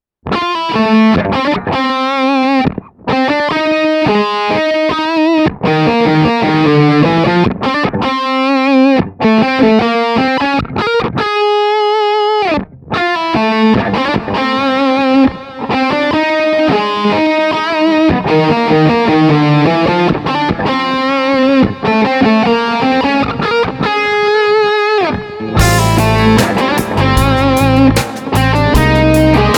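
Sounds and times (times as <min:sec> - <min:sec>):
lead guitar through Neve mic preamp: 0:00.2 - 0:29.5
band playing: 0:25.6 - 0:29.5.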